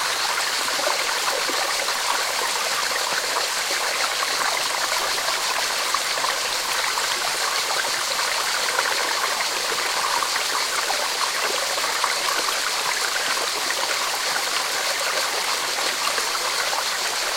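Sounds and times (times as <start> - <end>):
flowing water in nature rushing with fine splashing: 0.0 - 17.3.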